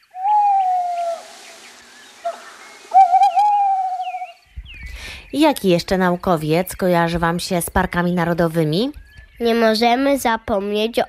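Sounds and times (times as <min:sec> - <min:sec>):
owl hooting: 0:00.0 - 0:04.4
faint higher bird calls: 0:00.0 - 0:05.4
speech: 0:05.3 - 0:11.0.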